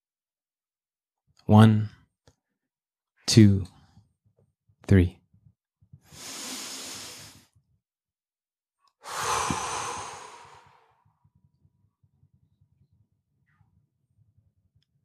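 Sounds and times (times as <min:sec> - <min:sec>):
speech: 0:01.5 - 0:02.0, 0:03.3 - 0:03.8, 0:04.9 - 0:05.2
group breathing in and out together on a count: 0:06.0 - 0:07.6, 0:09.0 - 0:11.1.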